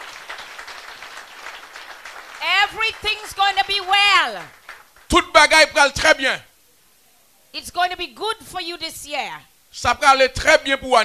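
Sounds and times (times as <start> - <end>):
congregation applauding during a church service: 0.0 - 5.6
speech: 2.7 - 6.5, 7.5 - 11.0.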